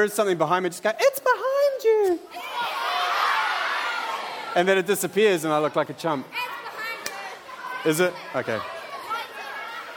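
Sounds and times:
speech: 0.0 - 2.5, 4.5 - 6.4, 7.8 - 8.8
audience cheering and shouting: 2.0 - 9.9.

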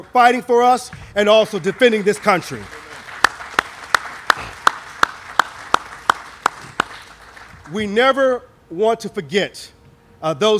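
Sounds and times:
speech: 0.0 - 2.8, 7.7 - 10.5
sharp evenly spaced hand claps: 1.6 - 7.8.

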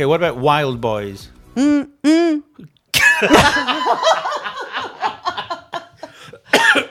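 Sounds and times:
speech: 0.0 - 4.2
laughter: 3.0 - 6.9
person coughing into the microphone: 6.5 - 6.9.

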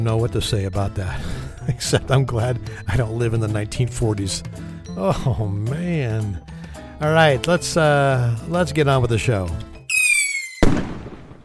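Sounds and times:
speech: 0.0 - 9.7
whistling firework: 9.9 - 11.4.

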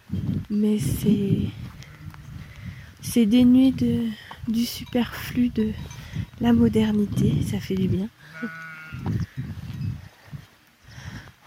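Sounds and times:
speech: 0.1 - 1.7, 3.0 - 9.6
flock of sheep bleating: 8.2 - 9.1.

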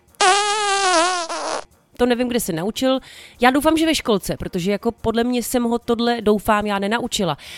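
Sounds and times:
loud buzzy fart sound: 0.2 - 1.7
speech: 2.0 - 7.5.

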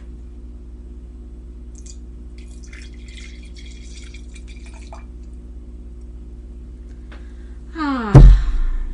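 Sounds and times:
steady low hum: 0.0 - 8.9
red wine poured into a glass: 1.8 - 5.2.

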